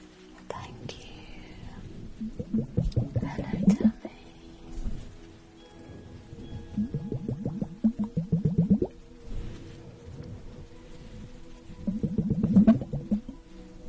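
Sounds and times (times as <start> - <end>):
liquid bubbling and gurgling: 2.0 - 4.0, 6.6 - 9.1, 11.8 - 13.4.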